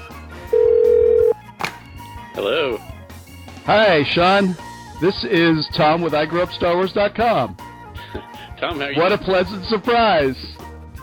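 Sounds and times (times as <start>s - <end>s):
telephone ringing: 0.5s - 1.4s
speech: 2.4s - 2.9s, 3.7s - 10.6s.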